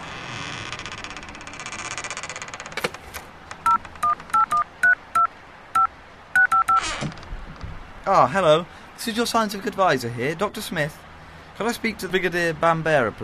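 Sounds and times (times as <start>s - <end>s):
telephone keypad dialing tones in a phone box: 3.6s - 6.8s
speech: 8.1s - 13.2s.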